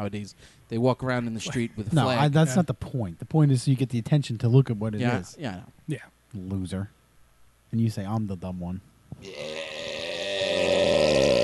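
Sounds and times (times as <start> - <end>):
speech: 0.0 - 7.0, 7.7 - 9.6
long drawn-out rasping gurgling belch: 9.2 - 11.4.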